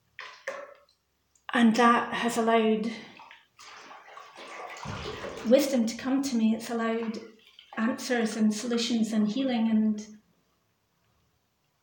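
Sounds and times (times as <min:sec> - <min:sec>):
water splashing in a bathtub: 0:00.0 - 0:01.2, 0:02.2 - 0:09.3
speech: 0:01.5 - 0:03.1, 0:05.5 - 0:10.2.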